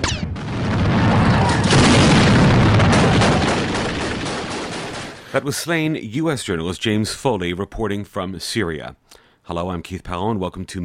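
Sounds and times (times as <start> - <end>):
heavy weapons and mortar fire in a town in Syria: 0.0 - 5.5
speech: 5.4 - 10.8.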